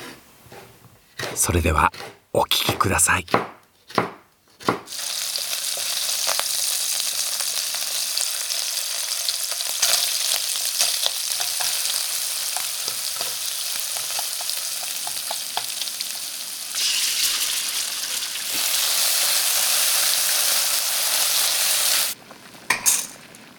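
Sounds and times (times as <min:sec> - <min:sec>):
speech: 0:01.4 - 0:03.5
Napolitan spaghetti with fresh mushrooms sizzling in a hot pan: 0:04.9 - 0:23.5.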